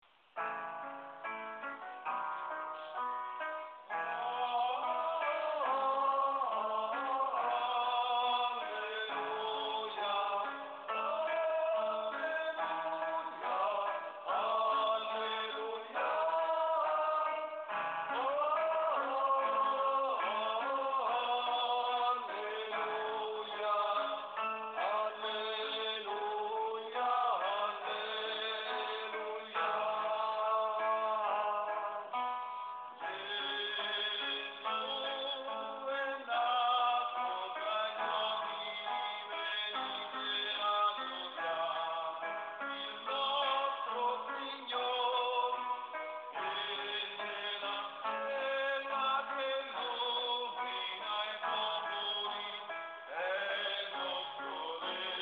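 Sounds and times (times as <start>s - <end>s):
tenor singing: 1.3s - 55.2s.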